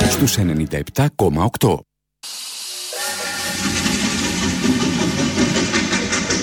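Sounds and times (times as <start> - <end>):
speech: 0.2 - 2.4
steam locomotive rumbling along tracks: 2.5 - 6.4.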